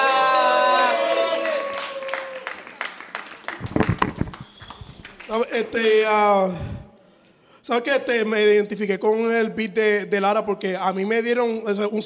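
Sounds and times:
audience clapping: 0.3 - 5.8
speech: 5.3 - 6.7, 7.7 - 12.0.

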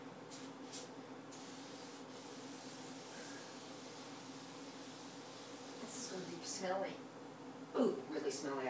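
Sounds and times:
aerosol foam cleaner being sprayed: 0.3 - 6.4
speech: 6.1 - 7.1, 7.7 - 8.6.

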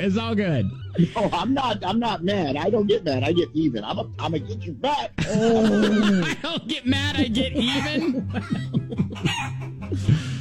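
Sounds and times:
speech: 0.0 - 10.2
laughter: 0.3 - 10.3
flock of chickens clucking: 7.6 - 10.3
rooster crowing: 9.2 - 9.7.

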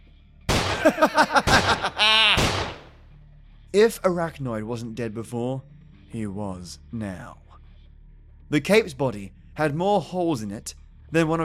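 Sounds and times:
gunshots fired into a corpse: 0.5 - 2.9
man laughing: 0.7 - 2.8
speech: 0.8 - 2.5, 3.7 - 7.4, 8.5 - 11.4.

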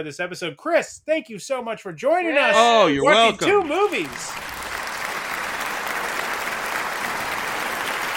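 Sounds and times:
speech: 0.0 - 4.6
crowd applauding: 2.6 - 8.1.

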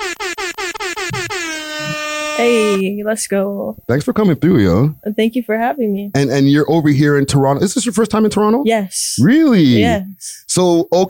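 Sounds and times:
air horn blasts: 0.0 - 2.9
speech: 2.4 - 11.0.

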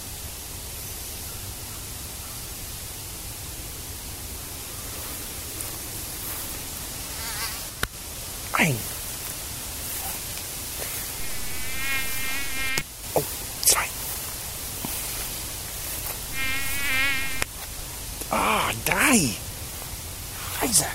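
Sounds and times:
steady hiss of wind-like noise: 0.0 - 20.9
soft brief vocal sounds: 8.4 - 9.0, 9.8 - 14.2, 18.2 - 19.5, 20.3 - 20.9
speech: 8.6 - 8.9
mosquitoes buzzing while biting a person in a backyard: 10.9 - 14.2, 15.8 - 17.6.

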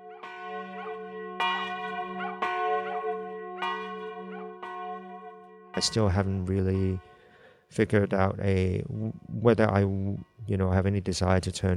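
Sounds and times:
church bells ringing in a tower: 0.0 - 8.1
speech: 5.8 - 7.1, 7.7 - 11.7.

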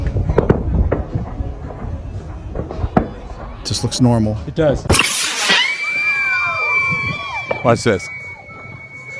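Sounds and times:
rumbling crackling background: 0.0 - 3.6
speech: 3.7 - 5.2, 7.6 - 8.2
large firework shell bursting: 4.9 - 6.3.

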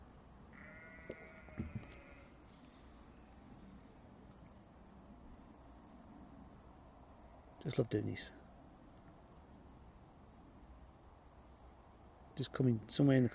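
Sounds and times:
sheep bleating from across open ground: 0.5 - 2.4
speech: 7.6 - 8.4, 12.4 - 13.3.

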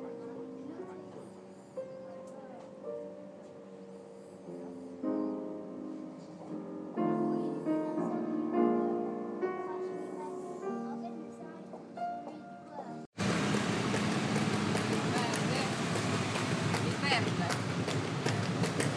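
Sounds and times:
faint voices: 0.0 - 12.4
soft live piano notes: 0.0 - 18.9
horse hooves clip-clopping pulling a small carriage in Palermo: 13.2 - 18.9
traffic noise in Palermo: 13.2 - 18.9.

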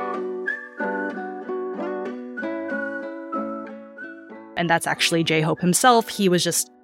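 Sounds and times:
person whistling a catchy melodic hook: 0.0 - 4.4
speech: 4.6 - 6.7.

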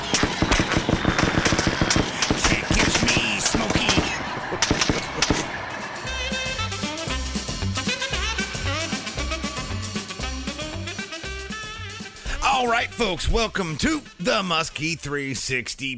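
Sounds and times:
rapid bursts of gunshots in a comedy chase skit: 0.0 - 6.0
laughter: 2.1 - 7.2
upbeat music track with a bouncing bass line: 6.1 - 15.7
speech: 12.9 - 15.9.

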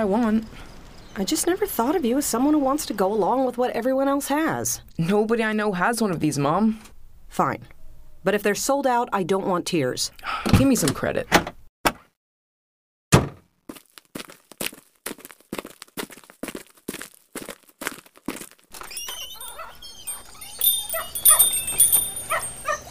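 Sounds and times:
speech: 0.0 - 11.5
crinkling: 13.7 - 22.9
high chirping in a pet store: 18.7 - 22.9
dogs barking in a pet store: 18.8 - 22.9
scattered yips: 18.8 - 22.9.

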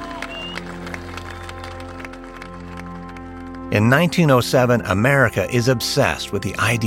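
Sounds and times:
crowd cheering and clapping: 0.0 - 3.7
speech: 3.7 - 6.8.

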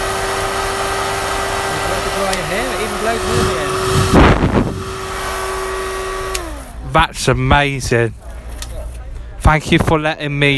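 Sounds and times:
1942 mains-powered hairdryer running: 0.0 - 6.8
speech: 3.0 - 4.3, 6.9 - 8.2, 9.5 - 10.5.

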